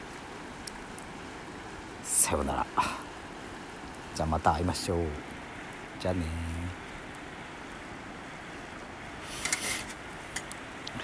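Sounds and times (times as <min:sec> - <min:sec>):
campfire crackling: 0:00.0 - 0:11.0
river water flowing: 0:00.0 - 0:11.0
speech: 0:02.3 - 0:03.0, 0:04.2 - 0:05.3, 0:06.0 - 0:06.5.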